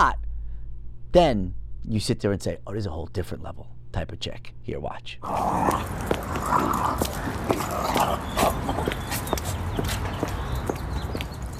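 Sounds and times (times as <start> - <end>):
speech: 0.0 - 0.2, 1.1 - 8.9
dogs fighting in a played video: 5.2 - 11.5.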